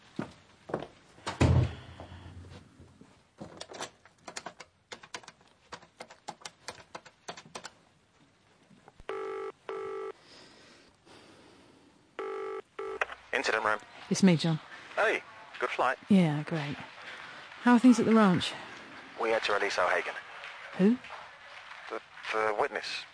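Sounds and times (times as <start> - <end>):
office phone dialling clicks: 9.0 - 10.1, 12.2 - 13.2
speech: 13.4 - 16.9, 17.6 - 20.2, 20.8 - 21.1, 21.9 - 23.1.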